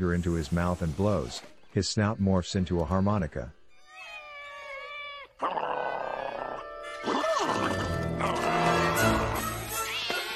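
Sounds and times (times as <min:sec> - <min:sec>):
speech: 0:00.0 - 0:03.6
cats being chased yowling and screeching: 0:03.7 - 0:09.3.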